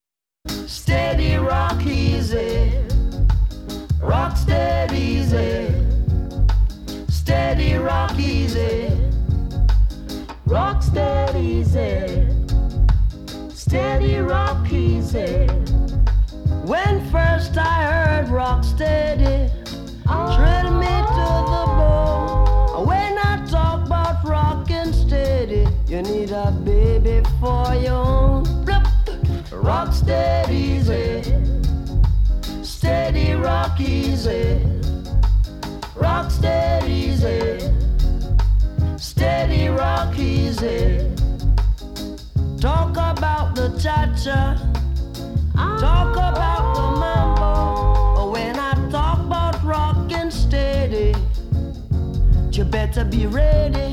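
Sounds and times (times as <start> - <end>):
reggae music: 0.4 - 53.9.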